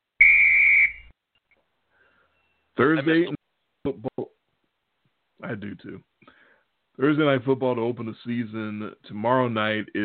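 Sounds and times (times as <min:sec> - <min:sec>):
shrill whistle blast: 0:00.2 - 0:01.1
speech: 0:02.8 - 0:04.3, 0:05.4 - 0:06.3, 0:07.0 - 0:10.0.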